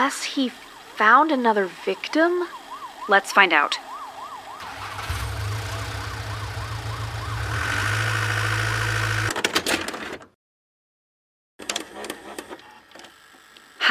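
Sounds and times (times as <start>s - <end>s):
speech: 0.0s - 3.9s
police car siren wailing: 0.0s - 9.3s
police car engine drone: 4.6s - 9.3s.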